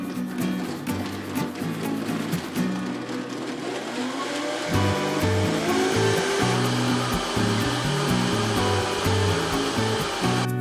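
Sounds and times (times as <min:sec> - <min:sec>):
blender motor whirring on high speed: 0:00.1 - 0:10.5.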